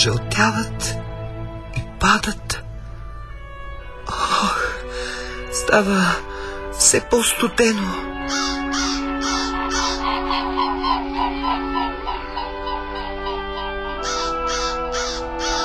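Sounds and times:
speech: 0.0 - 1.0, 2.0 - 2.6, 5.6 - 8.9
low sustained drone: 0.0 - 15.6
flock of large white birds honking: 8.1 - 15.6.

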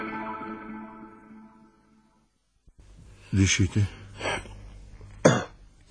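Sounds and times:
speech: 3.4 - 4.0
single sharp cough: 5.2 - 5.6.

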